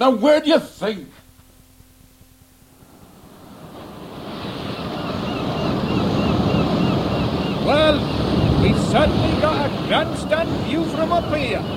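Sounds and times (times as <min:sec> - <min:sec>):
speech: 0:00.0 - 0:01.2, 0:07.7 - 0:11.7
storm-force gale wind roaring: 0:02.7 - 0:11.7
surf crashing: 0:02.7 - 0:11.7.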